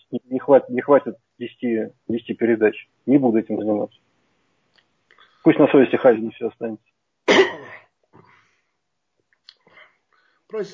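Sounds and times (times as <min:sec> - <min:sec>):
speech: 0:00.1 - 0:04.1, 0:05.4 - 0:07.6, 0:10.5 - 0:10.7
man coughing after choking on tea: 0:07.3 - 0:08.4.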